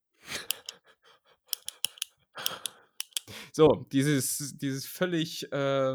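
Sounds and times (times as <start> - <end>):
ballpoint pen clicking: 0.5 - 0.8, 1.6 - 3.3
speech: 3.6 - 5.9.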